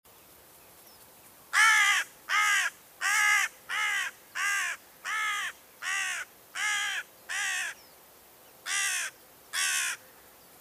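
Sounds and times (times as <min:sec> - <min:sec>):
Corvus corone carrion crow calling rasping caws: 0:01.6 - 0:07.8, 0:08.7 - 0:10.0.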